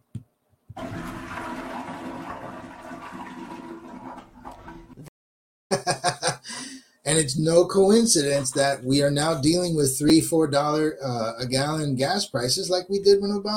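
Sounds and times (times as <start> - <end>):
toilet flushing with a rush of water and a gurgle: 0.8 - 5.1
laughter: 5.7 - 6.7
speech: 7.1 - 13.5.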